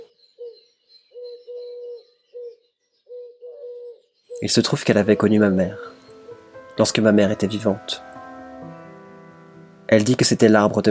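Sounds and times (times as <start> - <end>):
dove cooing on a high branch: 0.0 - 6.7
faint high chirping: 0.0 - 10.0
speech: 4.4 - 6.0, 6.8 - 8.1, 9.9 - 10.9.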